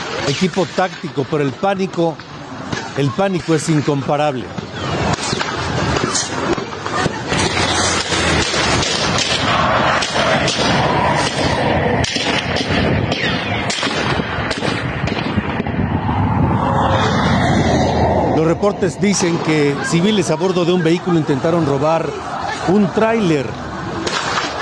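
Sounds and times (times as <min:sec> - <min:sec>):
constant roar of noise: 0:00.0 - 0:24.6
speech: 0:00.3 - 0:02.3, 0:03.0 - 0:04.9, 0:18.6 - 0:23.6
gunshots in a shootout between police and criminals in Tamaulipas Mexico: 0:04.5 - 0:15.7.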